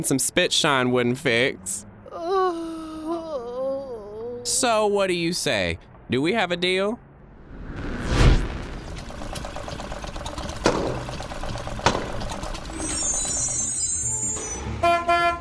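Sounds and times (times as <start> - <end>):
speech: 0.0 - 2.3, 4.4 - 7.0
vintage tour bus engine rumbling and chugging: 0.0 - 15.3
vintage tour bus arriving with a whoosh: 7.1 - 11.8, 12.4 - 15.2
vintage tour bus horn tooting: 13.0 - 15.3.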